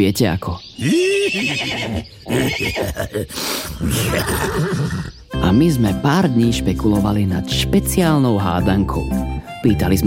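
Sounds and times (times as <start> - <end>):
speech: 0.0 - 10.0
horse whinnying loudly: 0.8 - 5.3.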